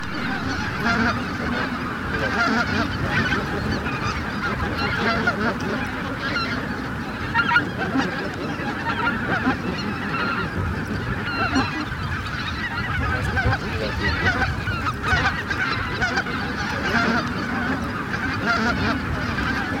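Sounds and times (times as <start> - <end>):
dense flock of greater white-fronted geese calling: 0.0 - 19.7.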